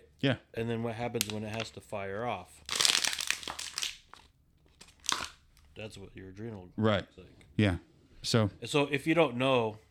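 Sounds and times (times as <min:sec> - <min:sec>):
speech: 0:00.2 - 0:02.7, 0:05.8 - 0:09.9
nearly empty plastic water bottle being crumpled: 0:01.1 - 0:01.9, 0:02.6 - 0:05.7.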